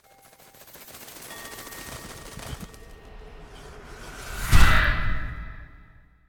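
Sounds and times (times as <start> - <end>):
transformation sound effect: 2.5 - 6.1.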